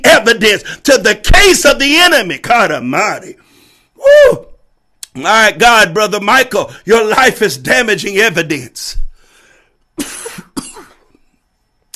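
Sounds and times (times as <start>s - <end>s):
speech: 0.2s - 3.4s, 4.0s - 4.5s, 5.2s - 9.1s
person coughing: 10.0s - 11.2s.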